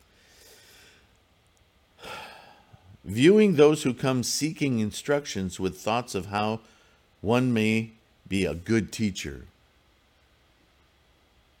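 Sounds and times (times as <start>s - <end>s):
woman breathing heavily and strained, struggling to breathe: 0.0s - 1.1s, 2.0s - 2.9s
speech: 3.1s - 9.5s.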